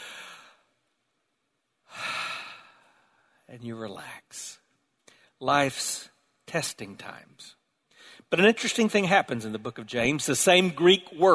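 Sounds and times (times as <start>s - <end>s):
deep breath taken to relax: 0.0s - 0.8s, 1.9s - 3.5s, 7.9s - 8.3s
speech: 3.5s - 4.6s, 5.4s - 11.3s.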